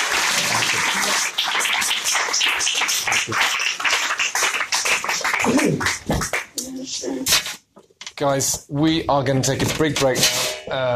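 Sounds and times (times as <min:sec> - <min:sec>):
audience applause: 0:00.0 - 0:06.6
speech: 0:03.2 - 0:03.6, 0:08.2 - 0:10.9.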